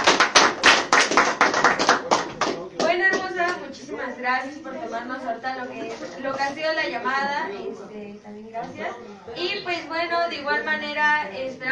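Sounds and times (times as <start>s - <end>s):
audience applause at a charity event: 0.0s - 2.9s
speech: 4.2s - 11.6s.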